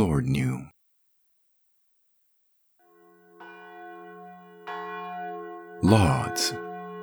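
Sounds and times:
speech: 0:00.0 - 0:00.8, 0:05.8 - 0:06.6
church bells ringing with a sustained hum: 0:02.9 - 0:07.0.

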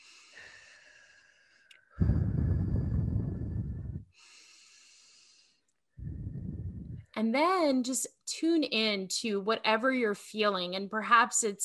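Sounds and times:
deep breathing in through the nose and out through the mouth: 0:00.0 - 0:07.2
speech: 0:07.2 - 0:11.6.

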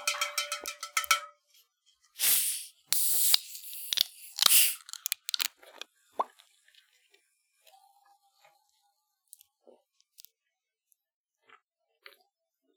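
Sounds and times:
glass bottle clinks and taps: 0:00.0 - 0:01.4
glass bottles of red pop and vanilla cream soda opening with fizz: 0:02.2 - 0:05.6.

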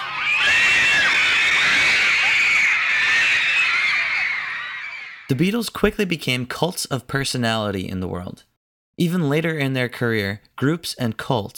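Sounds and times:
crowd of teenage fans screaming: 0:00.0 - 0:05.3
speech: 0:05.3 - 0:11.5.

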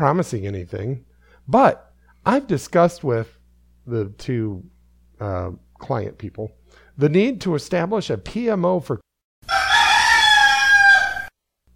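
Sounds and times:
speech: 0:00.0 - 0:09.6
rooster crowing: 0:09.4 - 0:11.4.

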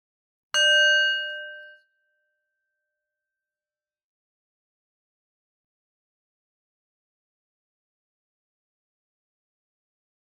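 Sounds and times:
meditation bell ringing: 0:00.6 - 0:01.9.

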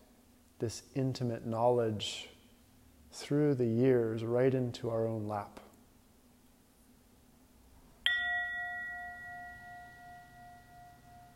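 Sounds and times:
speech: 0:00.6 - 0:02.4, 0:03.1 - 0:05.6
single bell ringing: 0:08.1 - 0:11.3.

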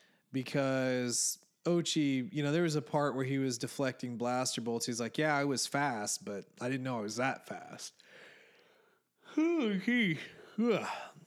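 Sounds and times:
speech: 0:00.3 - 0:08.2, 0:09.3 - 0:11.2
person yawning with voiced sighing: 0:09.3 - 0:11.2.

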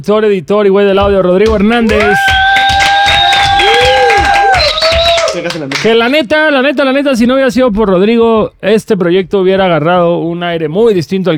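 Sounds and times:
speech: 0:00.0 - 0:02.4, 0:05.4 - 0:11.3
crowd applauding: 0:01.5 - 0:06.1
crowd shouting: 0:01.9 - 0:05.4
high whistles from a crowd: 0:02.0 - 0:05.4.

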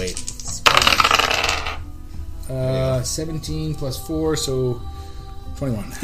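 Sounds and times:
dice rolling on a hard table: 0:00.0 - 0:01.8
speech: 0:02.5 - 0:05.0, 0:05.6 - 0:06.0.

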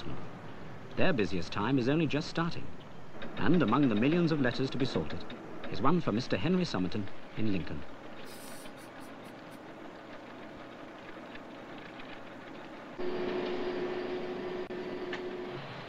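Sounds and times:
special parcels train rumbling at a station in Manchester: 0:00.0 - 0:15.8
speech: 0:01.0 - 0:02.8, 0:03.4 - 0:08.4.

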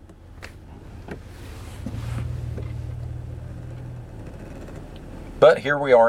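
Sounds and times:
car engine idling in slow traffic short of a traffic signal: 0:00.0 - 0:06.0
road noise: 0:00.0 - 0:06.0
speech: 0:05.4 - 0:06.0.

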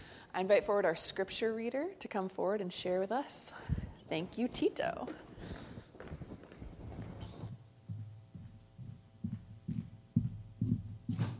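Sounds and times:
room noise: 0:00.0 - 0:11.3
speech: 0:00.4 - 0:05.6
footsteps on a hollow-sounding floor: 0:05.0 - 0:11.3.

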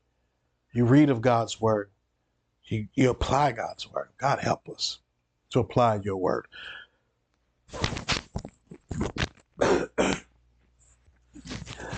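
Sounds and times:
speech: 0:00.7 - 0:02.0, 0:02.6 - 0:06.8, 0:07.7 - 0:08.0
cough: 0:09.6 - 0:10.3
person clearing throat in rough gravelly bursts: 0:09.6 - 0:10.3.

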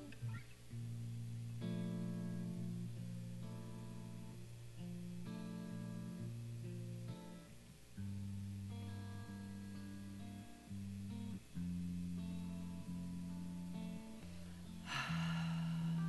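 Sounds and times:
low droning musical tones: 0:00.0 - 0:16.0
deep airy breath: 0:14.2 - 0:16.0.

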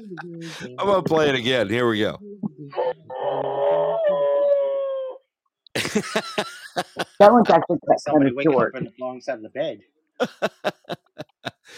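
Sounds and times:
speech: 0:00.0 - 0:04.2, 0:05.9 - 0:11.1
dog howling: 0:02.7 - 0:05.2
laughter: 0:05.8 - 0:07.4, 0:10.2 - 0:11.7.

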